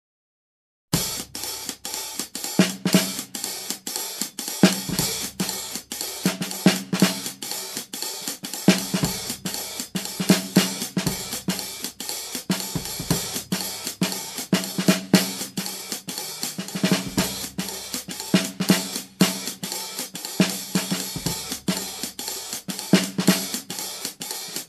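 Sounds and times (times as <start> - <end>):
fast jazz drum beat: 0.9 - 24.6.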